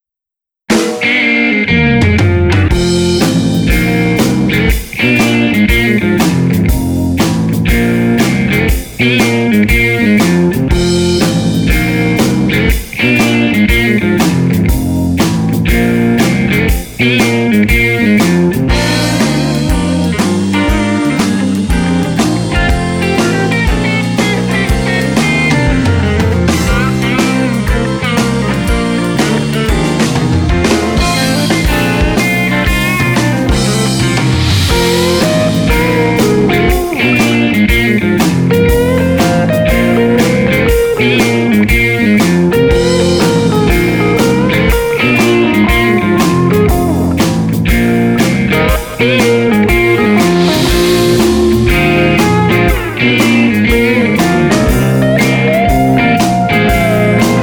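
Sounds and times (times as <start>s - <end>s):
upbeat blues rock instrumental: 0.7s - 57.4s.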